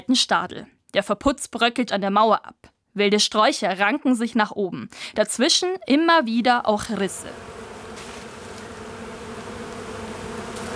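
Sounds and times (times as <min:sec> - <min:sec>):
speech: 0:00.1 - 0:07.6
dense swarm of bees buzzing in greenery: 0:07.0 - 0:10.7.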